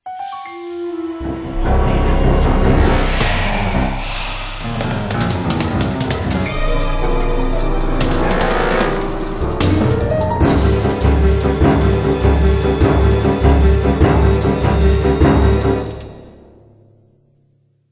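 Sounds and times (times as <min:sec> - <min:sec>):
fight music: 0:01.2 - 0:16.4.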